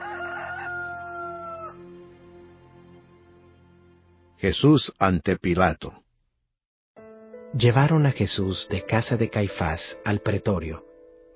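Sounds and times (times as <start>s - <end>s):
rooster crowing: 0.0s - 1.8s
speech: 4.4s - 6.0s, 7.6s - 10.9s.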